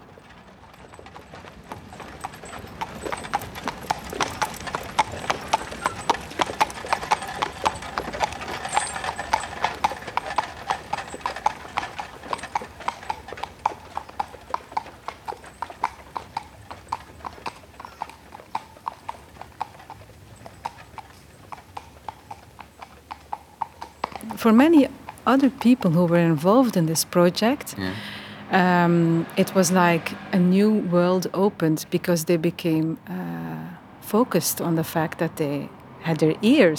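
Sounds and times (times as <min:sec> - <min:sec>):
horses walking with hooves clip-clopping: 0:00.0 - 0:36.7
faint murmur: 0:24.2 - 0:36.7
speech: 0:24.4 - 0:33.3, 0:34.0 - 0:36.7.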